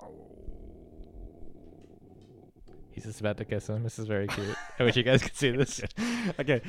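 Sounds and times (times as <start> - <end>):
dog growling low and steady: 0.0 - 3.7
speech: 3.0 - 6.6.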